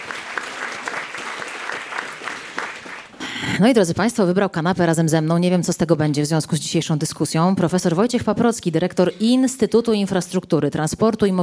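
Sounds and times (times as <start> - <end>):
audience applause: 0.0 - 3.3
speech: 3.4 - 11.4.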